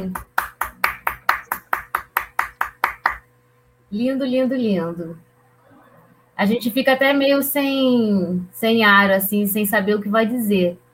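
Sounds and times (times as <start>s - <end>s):
speech: 0.0s - 0.3s, 3.9s - 5.3s, 6.4s - 10.8s
hand claps: 0.0s - 3.3s.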